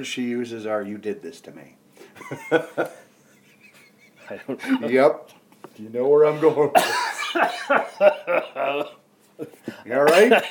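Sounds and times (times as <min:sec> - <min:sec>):
speech: 0:00.0 - 0:03.0, 0:04.3 - 0:10.4
suppressed coughs: 0:06.4 - 0:10.4.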